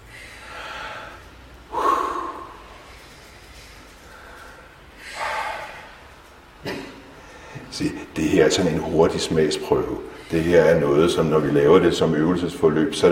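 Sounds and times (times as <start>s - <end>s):
deep belly breathing in and out through the nose: 0.0s - 6.2s
speech: 7.8s - 13.1s.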